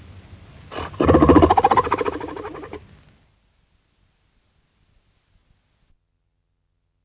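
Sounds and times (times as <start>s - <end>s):
harp seal pulsed call with buzzy trill: 0.7s - 2.8s.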